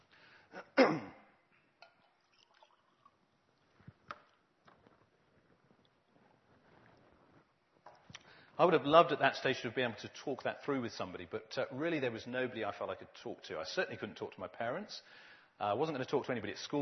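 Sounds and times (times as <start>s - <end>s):
person gulping or slurping water: 0.6s - 5.0s
speech: 8.6s - 16.8s.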